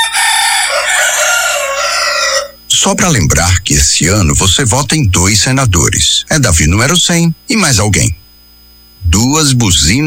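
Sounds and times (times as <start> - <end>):
two roosters crowing: 0.0 - 2.7
speech: 2.8 - 8.2, 9.1 - 10.0.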